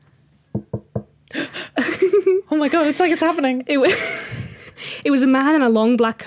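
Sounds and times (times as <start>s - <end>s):
knocking on a door: 0.5s - 1.2s
heavy banging on a door: 0.6s - 1.1s
speech: 2.5s - 4.2s, 5.0s - 6.2s.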